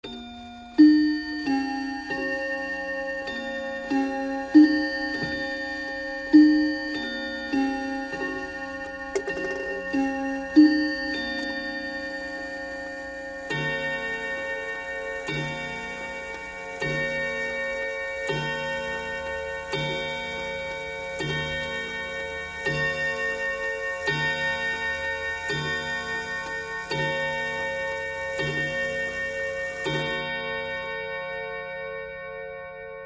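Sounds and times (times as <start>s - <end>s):
church bell: 0.0s - 33.0s.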